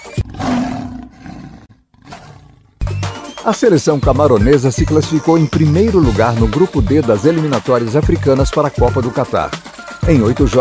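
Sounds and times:
lion roaring: 0:00.1 - 0:02.8
speech: 0:03.4 - 0:10.5.

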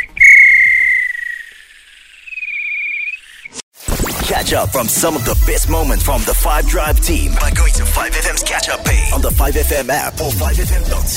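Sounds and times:
referee's whistle blowing for full time: 0:00.0 - 0:01.5
speech: 0:04.3 - 0:11.1.

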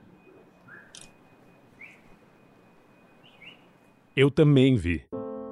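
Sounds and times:
thin constant tone: 0:00.0 - 0:04.3
short chirpy human whistles from across the street: 0:00.6 - 0:01.0
speech: 0:04.2 - 0:05.2.

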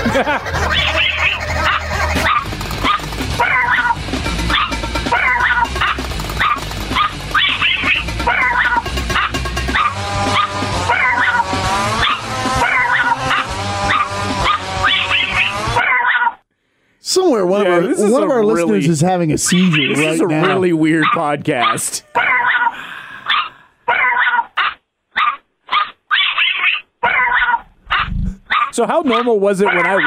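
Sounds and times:
laughter: 0:00.0 - 0:02.3, 0:17.6 - 0:22.4
several dogs barking and yipping excitedly: 0:00.0 - 0:16.4, 0:19.4 - 0:30.0
speech: 0:00.2 - 0:01.0, 0:18.6 - 0:22.4, 0:28.8 - 0:30.0.

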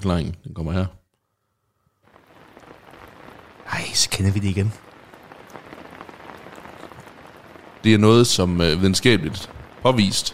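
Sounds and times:
speech: 0:00.0 - 0:01.0, 0:03.7 - 0:04.9, 0:07.8 - 0:10.3
steady rain pouring down: 0:02.0 - 0:10.3.

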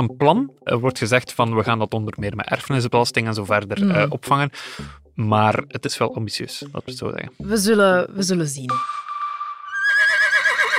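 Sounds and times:
speech: 0:00.0 - 0:09.1
horse whinnying: 0:09.7 - 0:10.7.

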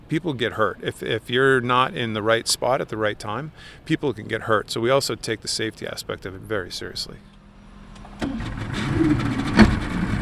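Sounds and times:
speech: 0:00.1 - 0:07.4, 0:09.0 - 0:09.6
small motorboat engine running: 0:07.2 - 0:10.2.

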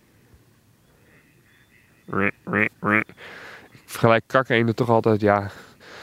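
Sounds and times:
gadwall duck quacking: 0:01.7 - 0:03.2
speech: 0:02.1 - 0:05.7.

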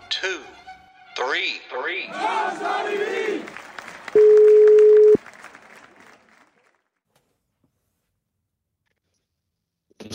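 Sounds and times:
speech: 0:00.2 - 0:00.6, 0:01.2 - 0:03.6
telephone ringing tone: 0:04.2 - 0:05.2.

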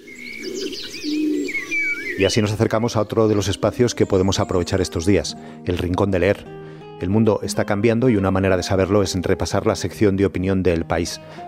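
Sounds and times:
pigeon cooing in Garajonay park on La Gomera: 0:00.0 - 0:02.6
small birds chirping in Garajonay park on La Gomera: 0:00.0 - 0:05.6
speech: 0:02.2 - 0:11.4.

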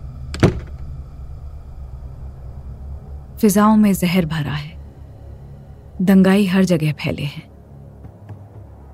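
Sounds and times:
low rumble: 0:00.0 - 0:08.0
house door slamming shut: 0:00.3 - 0:00.9
speech: 0:03.4 - 0:04.8, 0:06.0 - 0:07.5.

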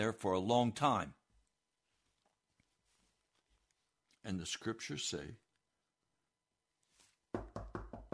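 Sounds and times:
speech: 0:00.0 - 0:01.2, 0:04.2 - 0:05.4
faint soft rustle: 0:01.3 - 0:04.3, 0:06.8 - 0:07.3
solid knocking on a door: 0:07.3 - 0:08.1.

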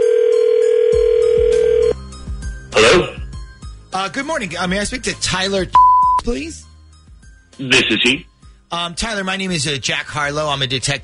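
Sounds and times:
loud steady telephone dial tone: 0:00.0 - 0:02.0
speech: 0:04.1 - 0:06.7, 0:07.6 - 0:11.0.

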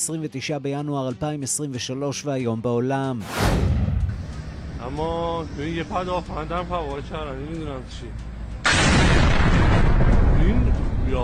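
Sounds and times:
speech: 0:00.0 - 0:03.9, 0:04.8 - 0:08.3, 0:10.4 - 0:11.2
explosion blast at a military facility: 0:03.2 - 0:04.3, 0:08.7 - 0:10.5.

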